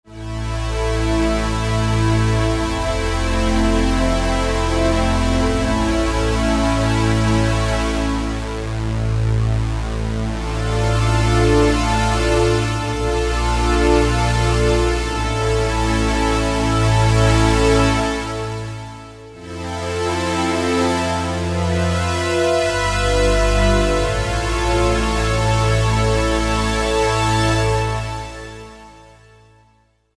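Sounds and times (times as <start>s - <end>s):
Roland SR-JV80-04 Vintage Synth strings: 0.2s - 29.4s.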